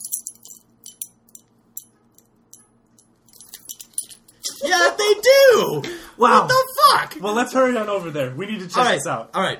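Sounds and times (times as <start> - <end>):
car keys jangling in a hand: 0.0 - 4.6
low hum: 0.0 - 9.5
speech: 4.6 - 9.5.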